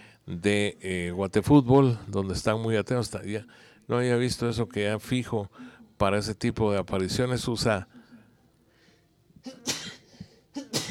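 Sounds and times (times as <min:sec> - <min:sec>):
speech: 0:00.3 - 0:08.0
person sneezing: 0:09.4 - 0:10.9.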